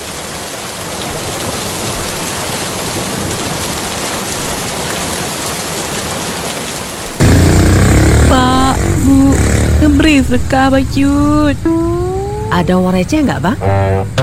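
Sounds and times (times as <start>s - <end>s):
heavy rain pouring: 0.0s - 14.2s
deep thunder-like rumble: 7.2s - 14.2s
speech: 9.8s - 11.8s, 12.5s - 14.2s.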